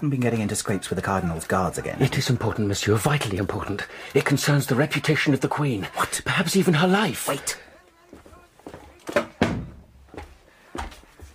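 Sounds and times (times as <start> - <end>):
speech: 0.0 - 7.6
wooden door swinging shut: 8.9 - 10.0
faint thump: 9.2 - 9.9.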